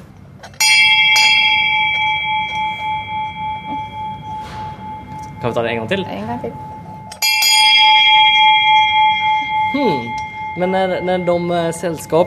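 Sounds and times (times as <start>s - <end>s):
stock exchange opening bell ringing: 0.5s - 12.2s
speech: 5.4s - 6.7s, 9.7s - 12.2s.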